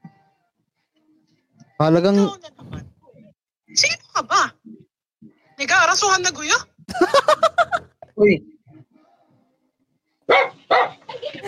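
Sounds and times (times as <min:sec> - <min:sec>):
speech: 0:01.8 - 0:02.6, 0:05.9 - 0:07.5, 0:08.2 - 0:08.5
laughter: 0:06.9 - 0:08.0, 0:11.1 - 0:11.4
dog yelping or whining: 0:10.3 - 0:11.1
dog barking: 0:10.3 - 0:11.2.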